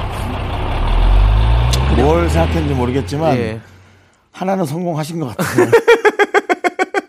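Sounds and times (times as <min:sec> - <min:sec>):
voice imitating a one-ton truck with a broken steering wheel: 0:00.1 - 0:03.7
speech: 0:02.2 - 0:03.8, 0:04.4 - 0:06.0
laughter: 0:05.4 - 0:07.0.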